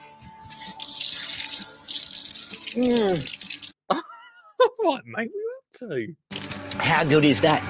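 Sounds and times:
water gushing from an outdoor garden tap: 0:00.6 - 0:03.8, 0:06.3 - 0:06.8
speech: 0:02.8 - 0:04.1, 0:04.8 - 0:07.6.

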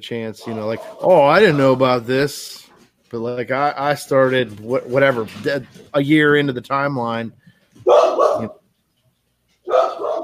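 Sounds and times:
speech: 0:00.0 - 0:08.6
dog barking: 0:07.9 - 0:08.6, 0:09.6 - 0:10.2.

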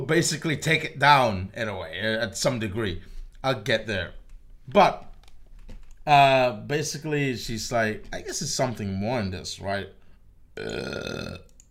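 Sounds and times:
speech: 0:00.0 - 0:05.1, 0:06.1 - 0:10.0, 0:10.6 - 0:11.5
quiet room noise: 0:00.0 - 0:11.6
long loud deep resonant burp: 0:10.6 - 0:11.6.

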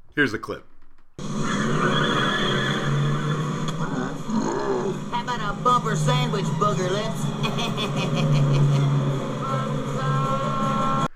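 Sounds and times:
speech: 0:00.2 - 0:02.0, 0:05.5 - 0:09.8
sharp crack: 0:00.9 - 0:05.3
truck engine straining as the truck is pulled backwards: 0:01.2 - 0:11.1
truck tires screeching and skidding as the truck is pulled backwards: 0:01.2 - 0:11.1
laughter: 0:01.4 - 0:11.0.

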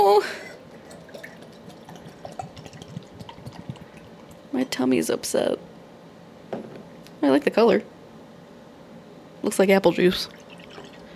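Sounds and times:
speech: 0:00.1 - 0:00.5, 0:04.6 - 0:05.7, 0:07.2 - 0:07.9, 0:09.4 - 0:10.4
lager-coloured beer pouring into a glass: 0:00.7 - 0:04.5, 0:10.3 - 0:11.1.

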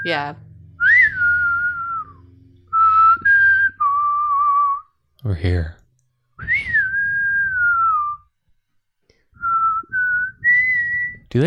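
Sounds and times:
speech: 0:00.0 - 0:00.4, 0:05.2 - 0:05.8
person whistling a western-style melody: 0:00.8 - 0:04.9, 0:06.4 - 0:08.3, 0:09.4 - 0:11.3.

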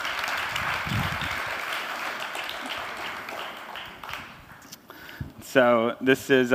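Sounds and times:
audience in a church applauding: 0:00.0 - 0:04.7
speech: 0:05.5 - 0:06.5.

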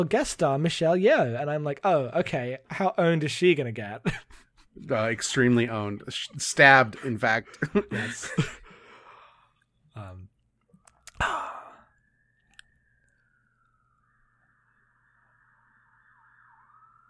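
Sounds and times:
speech: 0:00.0 - 0:08.6
laughter: 0:06.8 - 0:08.7
person sighing: 0:07.9 - 0:10.3, 0:11.0 - 0:12.0
brief human vocal sounds: 0:11.0 - 0:11.9
emergency vehicle siren passing outside: 0:11.3 - 0:17.0.

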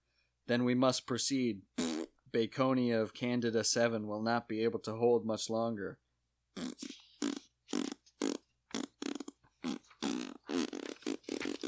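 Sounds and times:
speech: 0:00.5 - 0:06.0, 0:06.6 - 0:07.0
sputtering fart noises: 0:01.8 - 0:02.2, 0:06.6 - 0:11.6.

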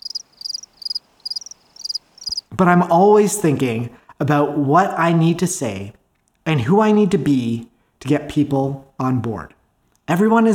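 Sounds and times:
crickets chirping: 0:00.0 - 0:02.4
speech: 0:02.5 - 0:10.5.

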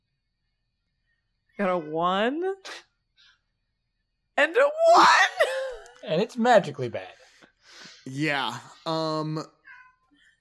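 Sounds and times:
speech: 0:01.6 - 0:02.8, 0:04.4 - 0:07.2, 0:08.0 - 0:09.6
faint cat chirps: 0:09.6 - 0:10.3.

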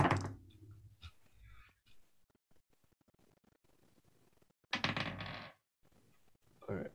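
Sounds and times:
dice rolled clattering across a hard table: 0:04.8 - 0:05.6.

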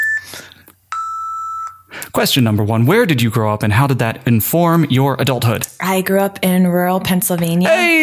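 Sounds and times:
loud electronic beeps: 0:00.0 - 0:01.9
speech: 0:02.1 - 0:08.0.

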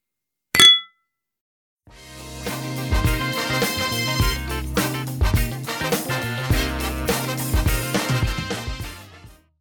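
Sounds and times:
beer glasses clinking in a toast: 0:00.6 - 0:01.0
upbeat music: 0:01.9 - 0:09.4.

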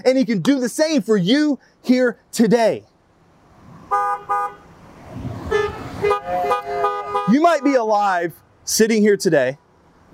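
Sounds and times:
speech: 0:00.0 - 0:02.9, 0:07.3 - 0:10.1
low rumbling traffic: 0:00.0 - 0:10.1
car horn honking: 0:03.9 - 0:04.7, 0:05.5 - 0:07.9.

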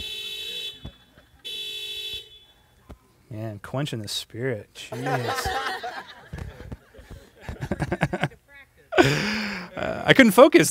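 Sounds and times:
car alarm honking outside: 0:00.0 - 0:02.8
laughter: 0:00.7 - 0:01.5, 0:04.8 - 0:10.2
speech: 0:03.3 - 0:05.7, 0:10.1 - 0:10.6.

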